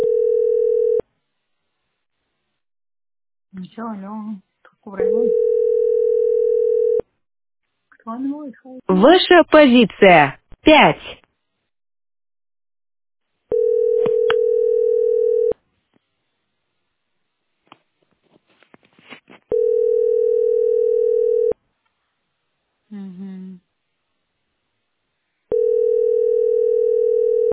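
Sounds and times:
telephone ringback tone of an unanswered call: 0:00.0 - 0:01.0, 0:05.0 - 0:07.0, 0:13.5 - 0:15.6, 0:19.5 - 0:21.6, 0:25.5 - 0:27.5
speech: 0:03.6 - 0:06.1, 0:08.0 - 0:11.2.

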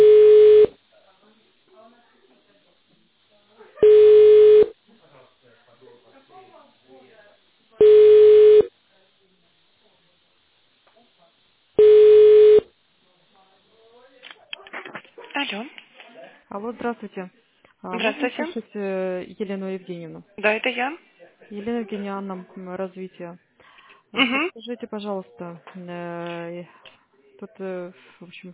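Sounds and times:
telephone line beeps while a call connects through an automated phone menu: 0:00.0 - 0:00.7, 0:03.8 - 0:04.7, 0:07.8 - 0:08.7, 0:11.8 - 0:12.7
speech: 0:16.8 - 0:23.5, 0:24.1 - 0:28.5.

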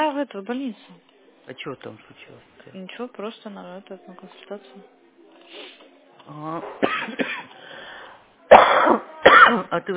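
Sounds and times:
speech: 0:00.2 - 0:05.7, 0:06.3 - 0:07.2, 0:08.9 - 0:09.9
child coughing: 0:06.7 - 0:07.6, 0:08.5 - 0:09.7.

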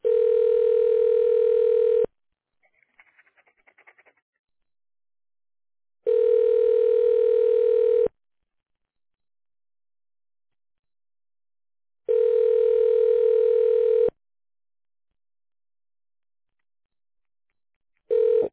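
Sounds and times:
telephone ringback tone during a call transfer: 0:00.0 - 0:02.1, 0:06.1 - 0:08.1, 0:12.1 - 0:14.1, 0:18.1 - 0:18.5.

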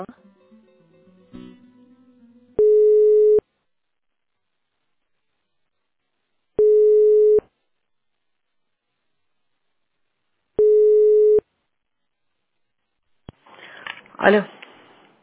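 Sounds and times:
speech: 0:00.0 - 0:00.2, 0:14.2 - 0:14.6
telephone line tone beeps while a call to a school is transferred: 0:02.6 - 0:03.4, 0:06.6 - 0:07.4, 0:10.6 - 0:11.4.

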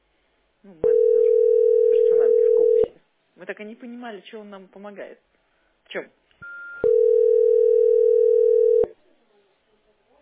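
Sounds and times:
speech: 0:00.6 - 0:01.5, 0:03.5 - 0:06.2
telephone tone: 0:00.8 - 0:02.9, 0:06.4 - 0:08.9.

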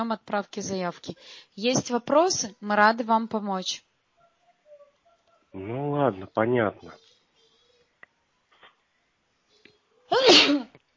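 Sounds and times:
speech: 0:00.0 - 0:03.9, 0:05.5 - 0:07.0
woman sneezing: 0:10.1 - 0:10.8.

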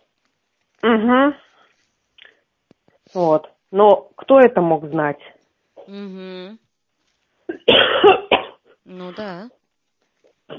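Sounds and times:
speech: 0:00.8 - 0:01.4, 0:03.1 - 0:06.6, 0:07.5 - 0:08.3, 0:08.9 - 0:09.6
brief voiced hum: 0:05.8 - 0:06.6, 0:08.9 - 0:09.5
loud harsh rasping cough: 0:07.5 - 0:08.7.

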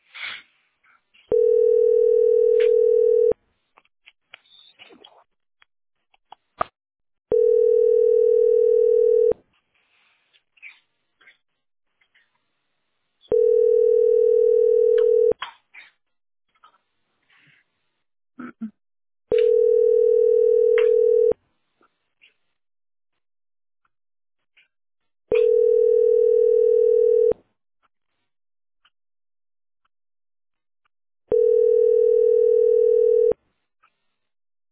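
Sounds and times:
telephone tone while a call is placed: 0:01.3 - 0:03.3, 0:07.3 - 0:09.3, 0:13.3 - 0:15.3, 0:19.3 - 0:21.3, 0:25.4 - 0:27.3, 0:31.3 - 0:33.4.

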